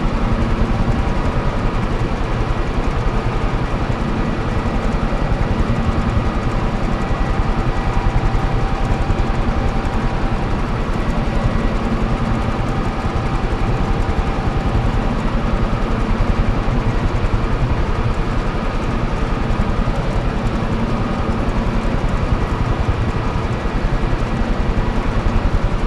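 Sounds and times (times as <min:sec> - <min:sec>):
ventilation fan: 0:00.0 - 0:25.8.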